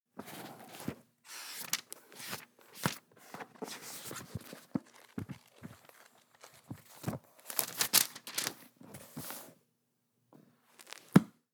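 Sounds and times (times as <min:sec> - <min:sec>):
book handling: 0:00.2 - 0:09.5, 0:10.8 - 0:11.3.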